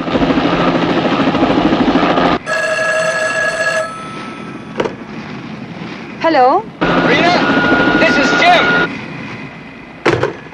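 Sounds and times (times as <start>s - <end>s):
helicopter overhead rumbling: 0.0s - 10.5s
car phone ringing with an electronic trill: 2.4s - 4.8s
speech: 6.3s - 7.6s.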